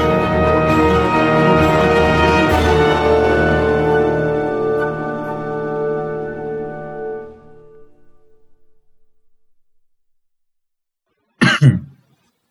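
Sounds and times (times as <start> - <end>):
sustained tonal sound: 1.1 - 10.3
single short cough: 11.4 - 12.1.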